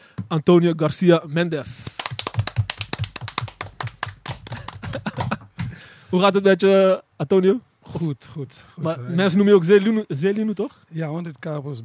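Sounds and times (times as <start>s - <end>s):
speech: 0.3s - 2.2s, 6.1s - 11.8s
audience applause welcoming a guest: 1.9s - 5.7s
laughter: 4.4s - 5.8s.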